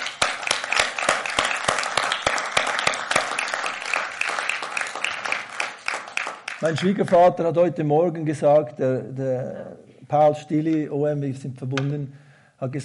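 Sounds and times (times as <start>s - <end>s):
audience applause: 0.0s - 7.2s
sharp individual claps: 0.0s - 7.3s
speech: 6.6s - 12.8s.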